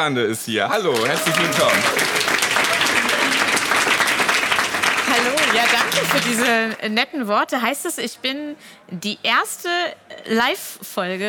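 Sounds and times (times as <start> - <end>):
speech: 0.0 - 2.3, 5.5 - 11.2
thunderous applause from a live audience: 0.8 - 6.7.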